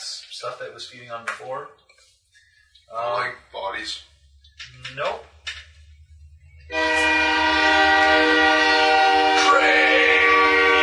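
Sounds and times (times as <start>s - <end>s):
speech: 0.4s - 1.8s, 2.9s - 4.1s, 4.7s - 5.4s
rumble of a passing train: 3.9s - 10.8s
train horn blaring: 6.7s - 10.8s.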